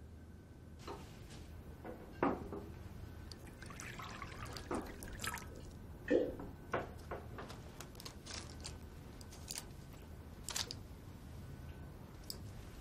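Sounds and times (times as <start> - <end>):
low hum: 0.0 - 12.7
faint water trickling: 3.2 - 6.3
water dripping and splashing: 3.3 - 5.8.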